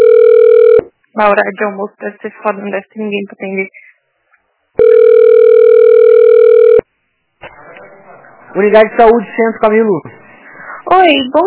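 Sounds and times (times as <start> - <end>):
telephone ringback tone on a call to a public health clinic: 0.0 - 0.9, 4.8 - 6.8
speech: 1.2 - 3.8, 8.5 - 10.2, 10.8 - 11.4.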